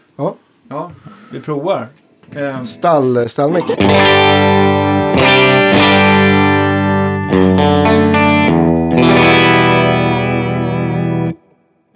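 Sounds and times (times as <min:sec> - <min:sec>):
speech: 0:00.2 - 0:04.1
driven electric guitar on bridge pickup through amp with light reverb: 0:03.6 - 0:11.9.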